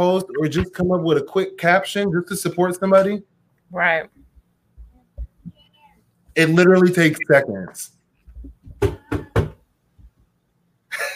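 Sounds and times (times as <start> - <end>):
speech: 0.0 - 4.2, 6.4 - 8.0
knocking on a door: 8.4 - 10.2.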